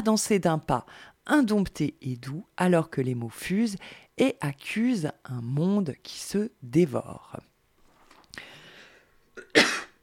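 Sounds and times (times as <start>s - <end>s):
speech: 0.0s - 7.5s
person clearing throat: 9.4s - 10.0s
person coughing: 9.4s - 10.0s.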